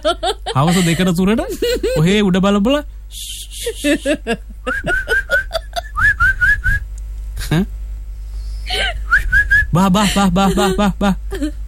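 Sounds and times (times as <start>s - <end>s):
laughter: 0.0s - 2.2s, 3.8s - 6.0s, 9.8s - 11.5s
speech: 0.0s - 5.2s, 7.5s - 7.8s, 9.8s - 11.6s
person whistling short sharp high notes: 6.0s - 6.8s, 9.1s - 9.7s.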